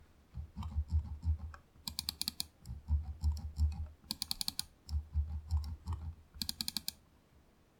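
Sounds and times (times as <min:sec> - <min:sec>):
mouse wheel: 0:00.4 - 0:07.0.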